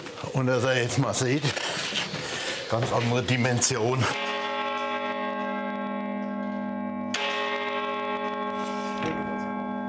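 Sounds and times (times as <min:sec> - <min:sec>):
speech: 0:00.3 - 0:02.0, 0:02.7 - 0:04.2
carillon bells of a collegiate church in Germany ringing: 0:04.1 - 0:09.8.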